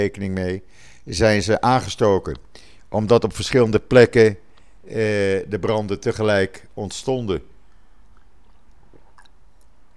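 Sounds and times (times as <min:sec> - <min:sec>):
speech: 0:00.0 - 0:07.5
low hum: 0:00.0 - 0:09.9
person sipping water: 0:04.4 - 0:05.0, 0:07.5 - 0:09.9
soft swallow: 0:07.6 - 0:09.9.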